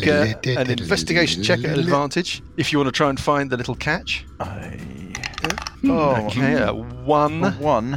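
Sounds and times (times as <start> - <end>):
speech: 0.0 - 7.9
dice rolling on a table: 5.2 - 5.8.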